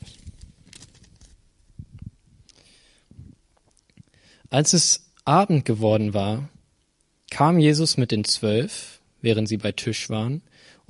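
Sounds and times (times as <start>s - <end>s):
book page being turned: 0.0s - 1.4s
speech: 4.5s - 6.6s, 7.4s - 10.8s.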